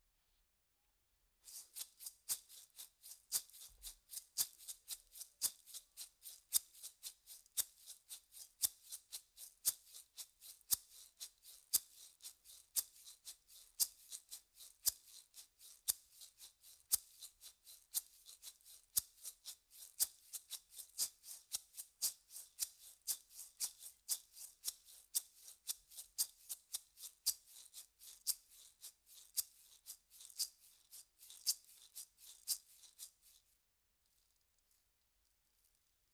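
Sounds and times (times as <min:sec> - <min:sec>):
percussion: 0:01.5 - 0:33.3.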